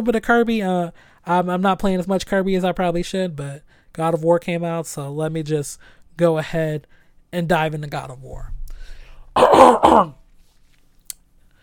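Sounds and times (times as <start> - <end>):
speech: 0.0 - 8.6, 9.4 - 10.2
throat clearing: 9.4 - 10.2.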